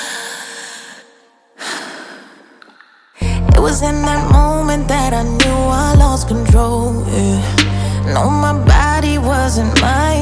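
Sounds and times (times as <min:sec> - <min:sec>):
deep breaths: 0:00.0 - 0:03.5
speech: 0:03.6 - 0:10.2.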